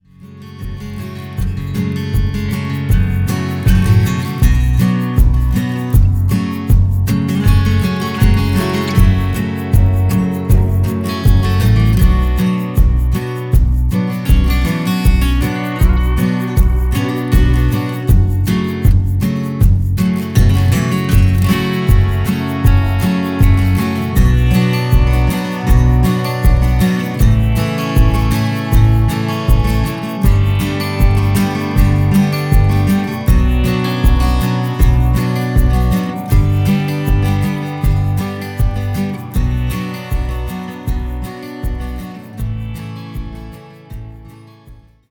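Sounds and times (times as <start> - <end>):
professional instrumental soundtrack music: 0.6 - 45.0.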